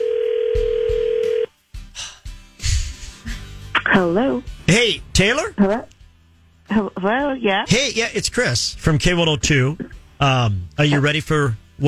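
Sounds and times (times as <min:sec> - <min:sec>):
telephone ringing on the line while placing a call: 0:00.0 - 0:01.5
speech: 0:04.0 - 0:06.0, 0:06.7 - 0:11.8.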